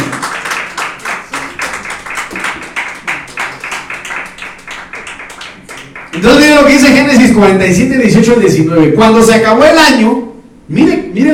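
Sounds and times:
crowd of people clapping hands: 0:00.0 - 0:07.0
speech: 0:06.2 - 0:11.3.

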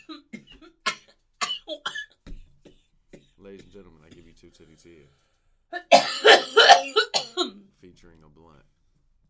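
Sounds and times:
person coughing: 0:00.0 - 0:04.5, 0:05.8 - 0:07.6
speech: 0:03.5 - 0:08.8.

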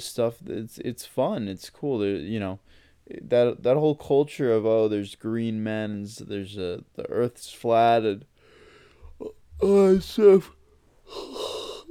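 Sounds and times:
speech: 0:00.0 - 0:08.3, 0:09.2 - 0:11.5
person yawning with groaning breaths: 0:09.0 - 0:09.8, 0:11.1 - 0:11.8.

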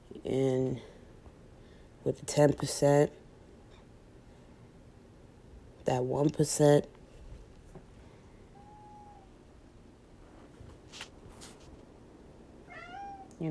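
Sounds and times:
steady low hum: 0:00.0 - 0:13.4
speech: 0:00.3 - 0:00.9, 0:02.0 - 0:03.2, 0:05.8 - 0:07.0
cat meowing: 0:08.5 - 0:09.3, 0:12.7 - 0:13.4.

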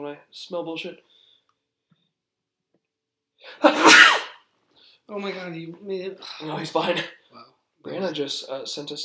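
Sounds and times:
speech: 0:00.1 - 0:01.2, 0:03.4 - 0:04.2, 0:05.1 - 0:09.0
sneeze: 0:03.6 - 0:04.5.

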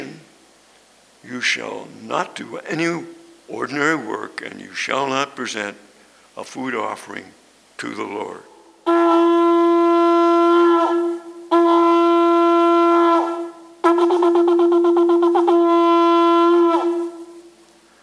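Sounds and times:
speech: 0:01.3 - 0:09.3
shofar ram's horn being blown: 0:08.8 - 0:17.6.

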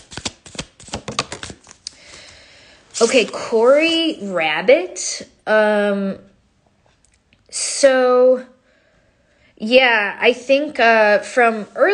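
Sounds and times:
tarot cards being shuffled before drawing a card: 0:00.0 - 0:02.3
speech: 0:03.0 - 0:06.3, 0:07.8 - 0:08.5, 0:09.6 - 0:11.9.

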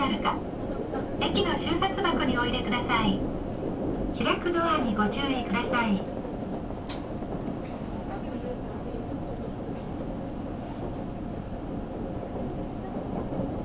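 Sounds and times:
person making announcements: 0:00.0 - 0:00.5, 0:01.2 - 0:03.3, 0:04.1 - 0:06.2
train rumbling: 0:00.0 - 0:13.6.

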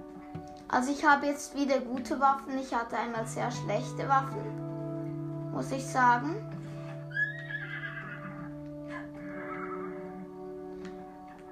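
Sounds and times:
speech: 0:00.7 - 0:04.6, 0:05.6 - 0:06.5
horse neighing: 0:06.8 - 0:10.2.

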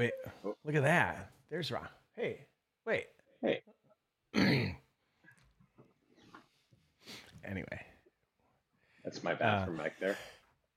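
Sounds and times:
speech: 0:00.0 - 0:03.1, 0:09.1 - 0:10.3
loud harsh throat-clearing cough: 0:04.3 - 0:04.9.

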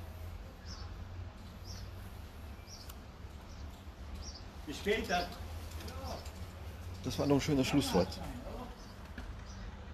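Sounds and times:
small bird chirping: 0:00.6 - 0:06.4
speech: 0:04.7 - 0:05.4, 0:07.0 - 0:08.4.

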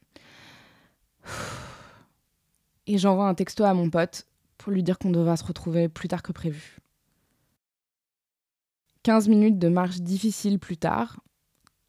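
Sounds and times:
deep breath drawn and let out: 0:00.1 - 0:02.2
speech: 0:02.9 - 0:06.8, 0:09.0 - 0:11.3.

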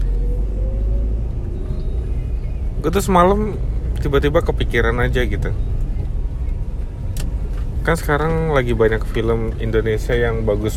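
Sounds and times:
car engine rumble inside a moving car cabin: 0:00.0 - 0:10.7
faint road noise: 0:00.0 - 0:10.7
speech: 0:02.8 - 0:05.7, 0:07.9 - 0:10.7.

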